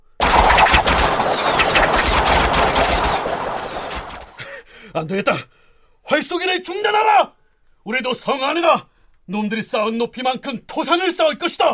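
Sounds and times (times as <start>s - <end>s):
matchlock guns firing rapid volleys: 0.0s - 4.4s
speech: 5.0s - 11.7s.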